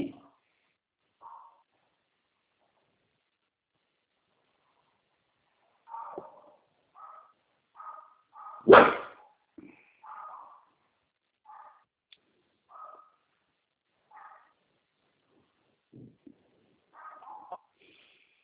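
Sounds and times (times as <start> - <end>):
dog barking in short sharp bursts: 1.2 - 1.7, 5.8 - 10.8, 11.4 - 11.9, 12.7 - 13.3, 14.1 - 14.6, 16.9 - 17.7
speech: 8.6 - 9.0.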